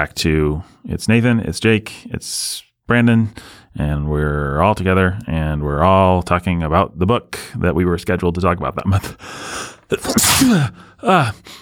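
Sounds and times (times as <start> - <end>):
speech: 0.0 - 11.6
person sneezing: 9.9 - 10.9.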